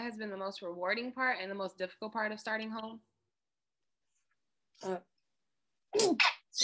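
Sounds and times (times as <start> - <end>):
speech: 0.0 - 3.1, 4.8 - 5.1, 5.9 - 6.6
person sneezing: 6.0 - 6.6.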